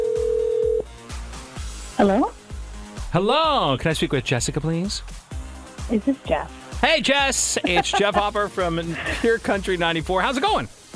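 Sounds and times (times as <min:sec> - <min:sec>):
steady telephone dial tone: 0:00.0 - 0:00.8
low rhythmic background: 0:00.0 - 0:10.9
speech: 0:02.0 - 0:02.4, 0:03.1 - 0:05.2, 0:05.9 - 0:10.8
laughter: 0:07.1 - 0:09.8.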